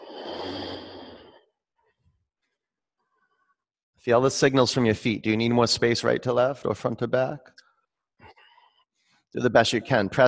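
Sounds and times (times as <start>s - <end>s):
slow inhale during a yoga exercise while bowing forward: 0.0s - 1.5s
speech: 4.0s - 7.6s, 9.3s - 10.2s.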